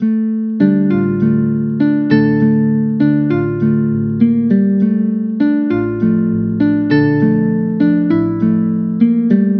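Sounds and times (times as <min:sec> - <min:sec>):
musical loop in D minor: 0:00.6 - 0:09.5.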